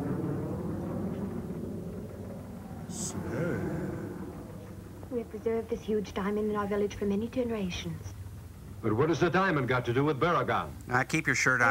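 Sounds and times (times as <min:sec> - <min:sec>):
jet aircraft flying overhead: 0:00.0 - 0:05.4
speech: 0:05.1 - 0:08.2, 0:08.8 - 0:11.6.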